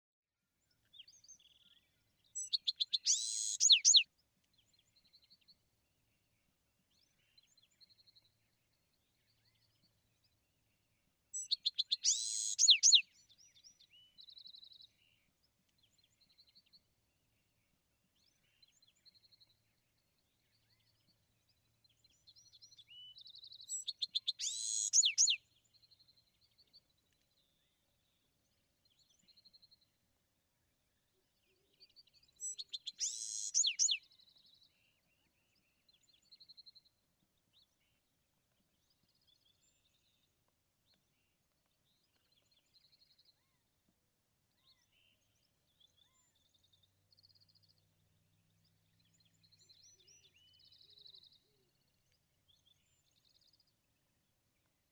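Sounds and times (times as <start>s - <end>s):
Bewick's wren singing: 2.4s - 4.0s, 11.4s - 13.0s, 23.7s - 25.4s, 32.4s - 34.0s.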